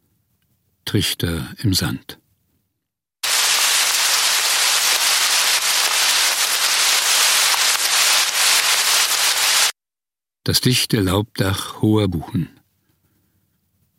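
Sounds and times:
speech: 0.9 - 2.2, 10.5 - 12.6
hard rain falling in a pine forest: 3.2 - 9.7.

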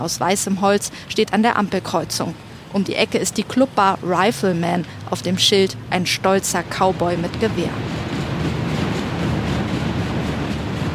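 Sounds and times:
speech: 0.0 - 8.0
long freight train with oil tanks and coal containers rattling past in Rawlins: 6.5 - 10.9.

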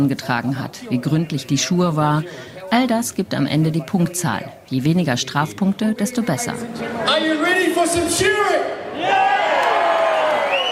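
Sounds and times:
speech: 0.0 - 9.3
large stadium crowd cheering and whooping at a sheep-shearing competition: 7.9 - 10.6.

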